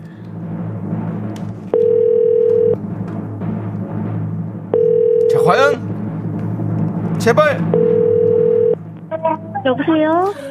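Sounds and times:
continuous music bed: 0.0 - 10.4
outgoing telephone ringback tone during a radio phone-in: 1.8 - 2.8, 4.8 - 5.4, 7.8 - 8.8
speech: 5.5 - 5.8, 7.2 - 8.0, 9.2 - 10.4.

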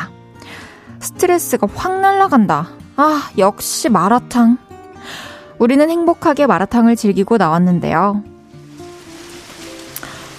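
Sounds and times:
speech: 1.0 - 8.3
steady rain: 8.5 - 10.3
brief sharper splash: 8.6 - 10.3.

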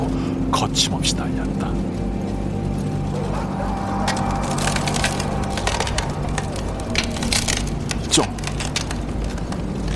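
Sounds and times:
speech: 0.6 - 2.2, 8.2 - 8.4
steady low rumble: 1.3 - 9.9
ice cracking and crunching: 2.8 - 9.9.

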